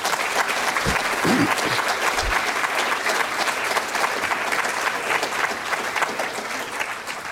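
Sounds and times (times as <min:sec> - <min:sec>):
large audience applauding at the close of a meeting: 0:00.0 - 0:07.3
faint voices: 0:00.9 - 0:02.5.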